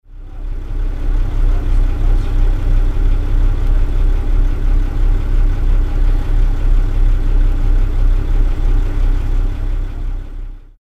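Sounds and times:
ship engine with enormous deep bass: 0.2s - 10.4s.

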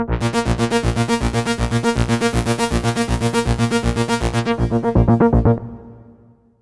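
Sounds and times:
arpeggio with chorus effect: 0.1s - 5.8s.

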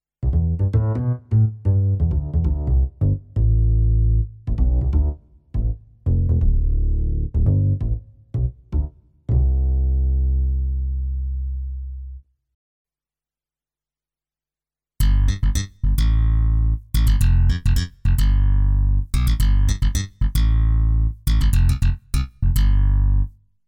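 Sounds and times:
bass sound: 0.2s - 12.2s, 15.0s - 23.4s.

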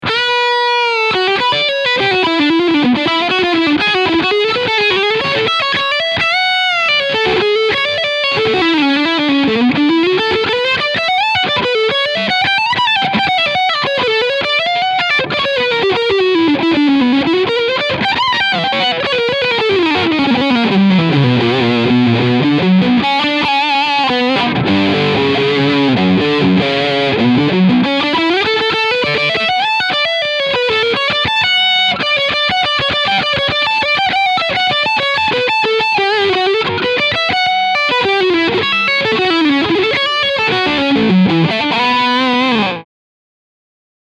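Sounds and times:
Jackson Pro Soloist SL2Q electric guitar with overdrive on bridge pickup: 0.0s - 42.8s.

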